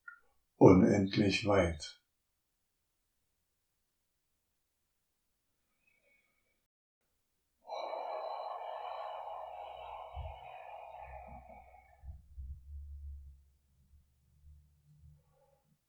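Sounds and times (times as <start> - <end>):
speech: 0.6 - 2.0
long deliberate breath during meditation: 7.6 - 13.3.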